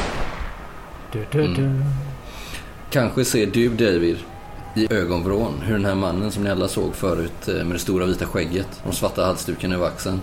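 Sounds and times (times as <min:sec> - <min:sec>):
gunshot with noisy echo: 0:00.0 - 0:00.8
speech: 0:01.1 - 0:02.1, 0:02.9 - 0:10.2.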